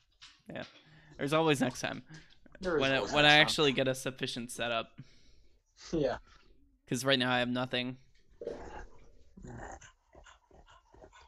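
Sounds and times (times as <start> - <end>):
speech: 0.5 - 5.1, 5.8 - 8.5
dog panting hard: 9.7 - 11.2.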